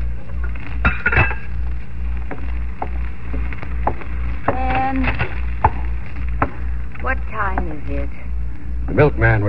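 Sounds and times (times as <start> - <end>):
steady low hum in a kitchen: 0.0 - 9.4
pots, pans and cutlery clanking in a kitchen: 0.9 - 1.5
speech: 9.0 - 9.4.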